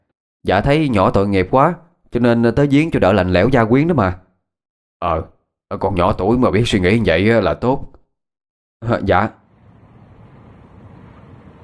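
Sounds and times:
speech: 0.4s - 4.2s, 5.0s - 8.0s, 8.8s - 9.4s
sudden gust of wind roaring: 9.5s - 11.6s.

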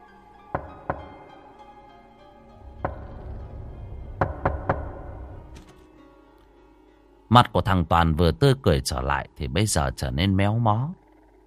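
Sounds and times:
knocking on a door: 0.5s - 1.3s, 2.6s - 5.4s
speech: 7.3s - 11.0s.

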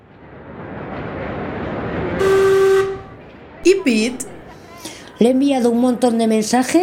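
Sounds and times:
train approaching with a low rumble: 0.0s - 4.7s
train horn blast: 2.2s - 3.2s
speech: 3.6s - 4.3s, 5.2s - 6.8s.

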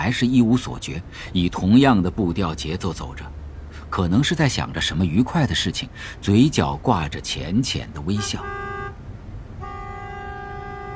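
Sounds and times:
speech: 0.0s - 8.6s
low rumbling traffic noise: 0.0s - 10.9s
car horn: 8.1s - 9.0s, 9.6s - 10.9s.

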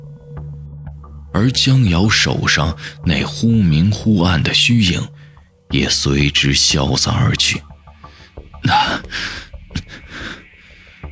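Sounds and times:
speech: 1.4s - 7.7s, 8.6s - 9.4s
man panting heavily catching his breath: 8.0s - 11.1s.

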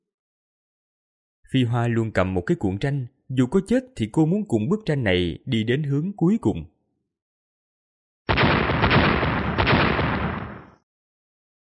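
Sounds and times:
speech: 1.5s - 6.7s
explosion roar: 8.3s - 10.8s.

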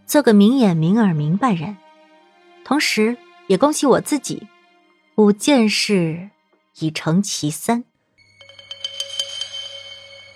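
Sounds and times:
speech: 0.1s - 1.8s, 2.6s - 4.6s, 5.2s - 7.9s
telephone ringing with a bright electronic ringtone: 8.2s - 10.3s.

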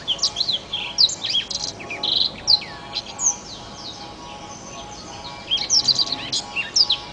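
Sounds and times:
Oriental magpie-robin singing: 0.0s - 7.1s
constant background hum: 0.0s - 7.1s.

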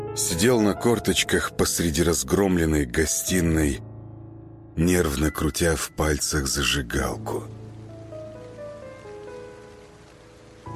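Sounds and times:
speech: 0.2s - 3.9s, 4.8s - 7.6s
cold rain drumming on a leaky roof: 5.0s - 10.7s.

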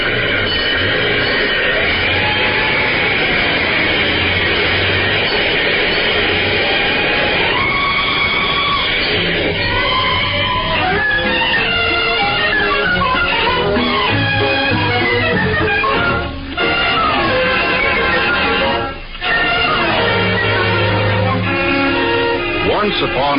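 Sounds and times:
fire engine pulling away with loud steady engine roar: 0.0s - 23.3s
fire engine siren wailing: 0.0s - 23.3s.

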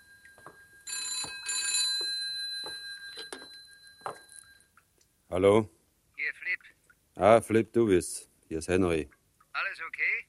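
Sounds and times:
telephone bell ringing: 0.0s - 4.7s
quiet knocks and shuffling: 0.0s - 5.2s
speech: 5.3s - 5.8s, 7.2s - 9.2s.

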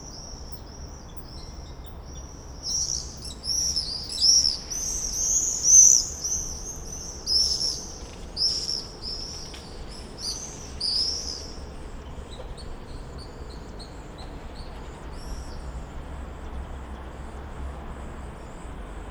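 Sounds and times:
constant low rumble: 0.0s - 19.0s
common swifts screaming on a summer evening in a backyard in Bytom, Poland: 2.2s - 11.9s.

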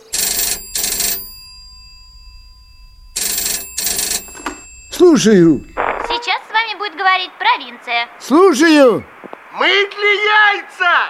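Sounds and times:
telephone bell ringing in double rings: 0.0s - 6.2s
speech: 5.0s - 5.7s, 7.0s - 11.0s.

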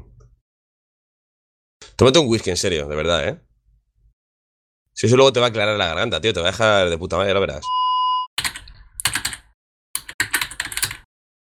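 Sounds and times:
speech: 2.0s - 3.5s, 5.0s - 7.8s
rapid typing on a computer keyboard: 8.4s - 11.1s.

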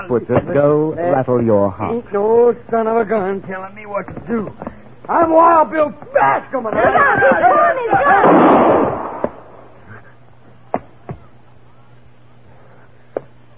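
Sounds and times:
speech: 0.0s - 9.0s
gunshot in a radio drama: 8.2s - 9.6s.

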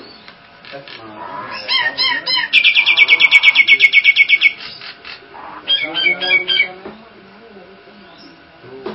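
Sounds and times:
Nias hill myna calling with clicks, rattling trill and chattering: 0.9s - 6.8s.

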